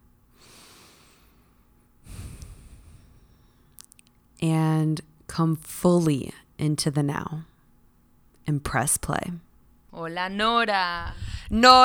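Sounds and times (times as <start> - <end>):
slow deep human breath during a guided breathing moment: 0.3 - 3.7
faint clicks: 3.7 - 4.2
speech: 4.4 - 7.5, 8.5 - 9.4, 10.0 - 11.8.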